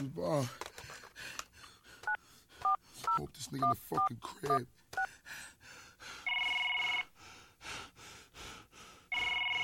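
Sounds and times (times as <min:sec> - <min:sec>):
speech: 0:00.0 - 0:01.3, 0:03.2 - 0:04.8
heavy breathing: 0:00.3 - 0:03.1, 0:05.0 - 0:06.4, 0:07.1 - 0:09.4
phone line ringing back: 0:06.3 - 0:07.1, 0:09.1 - 0:09.6.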